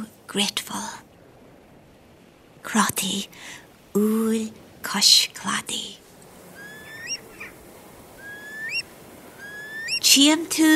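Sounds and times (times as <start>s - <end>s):
background hiss: 0.0s - 10.7s
speech: 0.3s - 1.1s, 2.6s - 6.0s, 10.1s - 10.7s
Eurasian curlew rising whistles on the coast of West Donegal: 6.6s - 7.6s, 8.2s - 10.1s.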